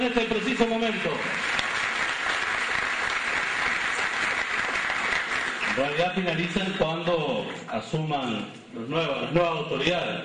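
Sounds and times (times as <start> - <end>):
speech: 0.0 - 1.6, 5.8 - 10.2
audience applause: 0.2 - 6.7.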